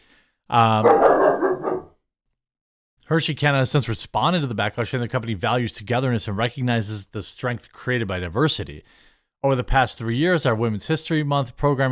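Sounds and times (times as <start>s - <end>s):
speech: 0.5s - 1.2s, 3.1s - 11.9s
dog barking downstairs: 0.8s - 2.0s.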